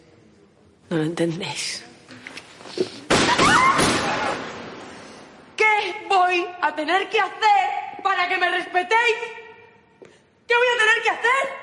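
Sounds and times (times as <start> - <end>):
speech: 0.9 - 1.9, 6.6 - 7.6, 8.2 - 9.4, 10.5 - 11.6
single gunshot fired at the ceiling in a museum: 3.1 - 5.2.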